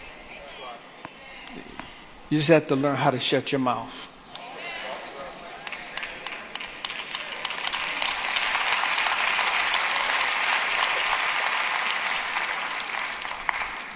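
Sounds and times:
speech: 0:02.3 - 0:04.1
crowd applauding: 0:04.4 - 0:13.9.

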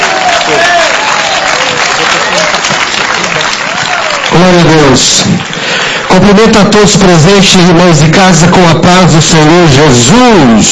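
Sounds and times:
large crowd applauding: 0:00.0 - 0:06.6
speech: 0:00.5 - 0:00.7, 0:04.4 - 0:10.7.

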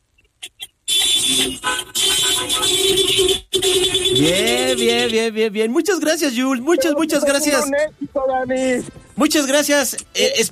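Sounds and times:
car horns honking: 0:00.4 - 0:05.4
speech: 0:04.3 - 0:10.5.

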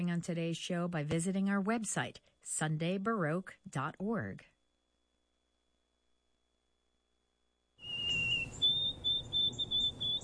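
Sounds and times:
speech: 0:00.0 - 0:04.5
white-throated sparrow song: 0:07.8 - 0:10.2.

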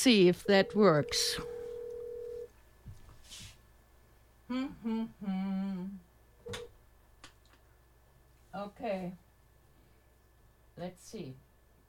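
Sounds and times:
speech: 0:00.0 - 0:01.5, 0:04.5 - 0:06.7, 0:08.6 - 0:09.2, 0:10.8 - 0:11.4
steady phone tone: 0:00.2 - 0:02.5.

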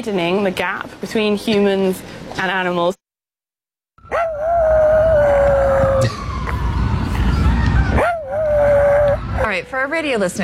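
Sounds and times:
city noise in Central Park: 0:00.0 - 0:03.0, 0:04.0 - 0:10.4
speech: 0:00.0 - 0:03.0, 0:09.5 - 0:10.4
tiny rat dog howling at sirens in Central Park: 0:04.1 - 0:06.2, 0:08.0 - 0:09.5.

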